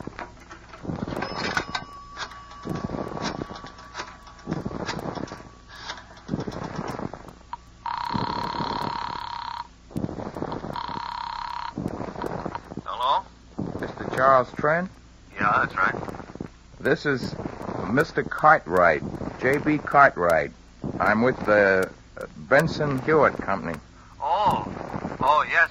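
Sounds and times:
telephone ringing in long electronic bursts: 0:00.0 - 0:12.8
rhythmic rasping pulses: 0:00.0 - 0:25.6
speech: 0:14.2 - 0:16.1, 0:16.8 - 0:23.9, 0:25.2 - 0:25.6.

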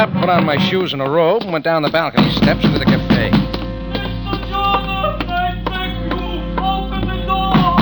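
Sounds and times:
speech: 0:00.0 - 0:03.6
heavy insistent pounding on a cafe door: 0:01.9 - 0:06.7
sustained musical drone: 0:02.2 - 0:07.7.

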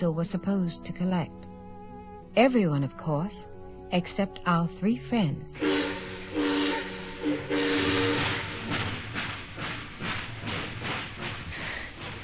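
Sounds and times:
speech: 0:00.0 - 0:01.4, 0:02.4 - 0:06.5
first-class steam train chugging in the United States of America: 0:05.5 - 0:12.2
steam locomotive whistle: 0:05.6 - 0:08.7.

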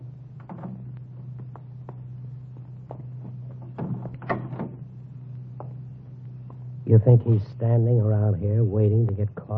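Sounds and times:
steady low idling hum: 0:00.0 - 0:09.5
car door eased open and shut quietly: 0:03.7 - 0:04.8
speech: 0:06.9 - 0:09.5.

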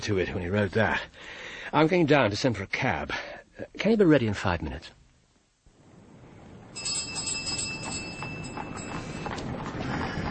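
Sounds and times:
speech: 0:00.1 - 0:05.0
doorbell ringing with a high metallic tone: 0:06.8 - 0:09.5.

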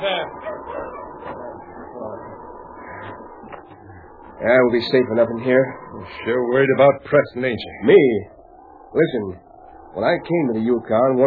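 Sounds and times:
speech: 0:00.0 - 0:01.0, 0:04.4 - 0:08.3, 0:08.9 - 0:09.4, 0:10.0 - 0:11.2
sled dogs yipping and whimpering on a Yukon trail: 0:00.0 - 0:04.6
steady lower murmur: 0:00.0 - 0:11.2.

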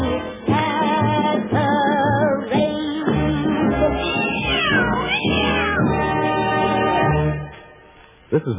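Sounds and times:
musical accompaniment: 0:00.0 - 0:08.1
voice imitating cats meowing and yowling: 0:04.0 - 0:06.0
speech: 0:08.4 - 0:08.5.

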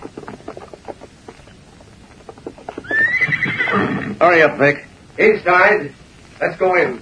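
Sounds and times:
horse hooves clopping: 0:00.0 - 0:05.6
horse whinnying loud and high: 0:02.5 - 0:04.2
speech: 0:04.2 - 0:07.0.

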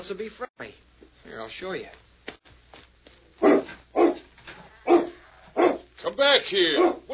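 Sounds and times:
speech: 0:00.0 - 0:02.0, 0:06.0 - 0:07.1
hound barking in a pen: 0:03.4 - 0:05.9, 0:06.7 - 0:07.1.

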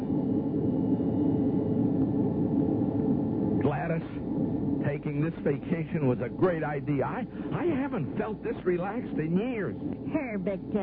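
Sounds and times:
steady low roar of a jet airplane in flight: 0:00.0 - 0:10.8
speech: 0:05.0 - 0:10.8.

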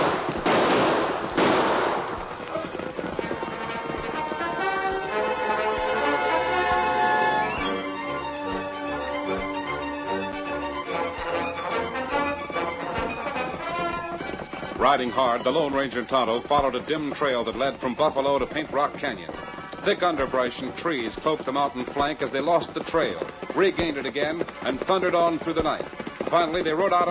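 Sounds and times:
gunshots fired over pursuing riders' heads: 0:00.0 - 0:04.6
dramatic orchestral music: 0:03.5 - 0:14.3
speech: 0:14.9 - 0:27.0.

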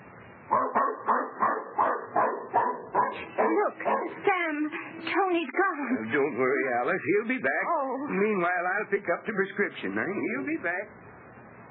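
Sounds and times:
dog barking excitedly while chasing a cat: 0:00.5 - 0:04.2
speech: 0:03.7 - 0:11.1.

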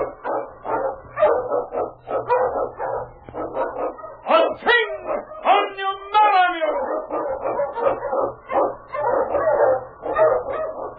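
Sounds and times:
Eskimo sled dog barking and yelping: 0:00.0 - 0:10.9.

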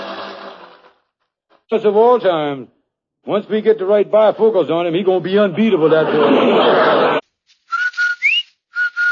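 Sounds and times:
speech: 0:01.7 - 0:07.1
laughter: 0:05.5 - 0:07.2
two-note advertising jingle whistle: 0:07.7 - 0:09.0.

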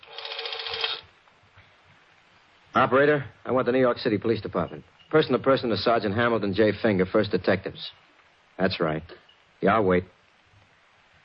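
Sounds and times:
rotary telephone dial turning and whirring in an office: 0:00.0 - 0:01.0
speech: 0:02.8 - 0:08.0, 0:08.6 - 0:10.2.

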